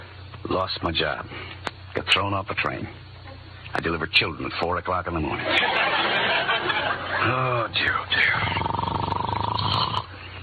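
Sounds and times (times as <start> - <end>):
speech: 0.5 - 3.0, 3.7 - 5.9, 7.2 - 8.5
laughter: 5.4 - 7.7
loud rough snoring: 8.1 - 10.1.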